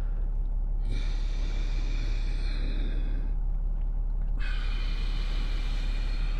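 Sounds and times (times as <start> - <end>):
Ujjayi yoga breathing: 0.0 - 6.3.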